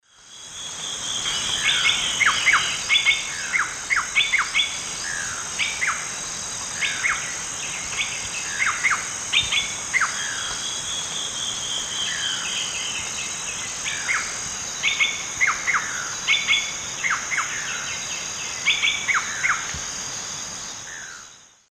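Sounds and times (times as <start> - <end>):
Cacicus sclateri singing in the Eastern Lowlands of South America: 0.2 - 21.6.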